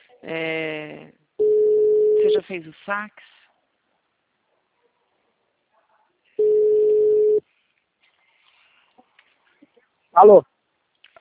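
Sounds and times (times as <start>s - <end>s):
speech: 0.2s - 1.2s, 2.2s - 3.4s, 10.2s - 10.5s
telephone ringback tone while placing a call: 1.4s - 2.3s, 6.4s - 7.4s.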